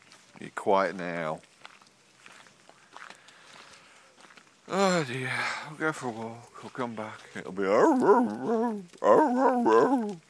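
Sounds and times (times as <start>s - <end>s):
speech: 0.5s - 1.5s, 4.7s - 10.2s
dog whining and howling: 7.7s - 10.2s.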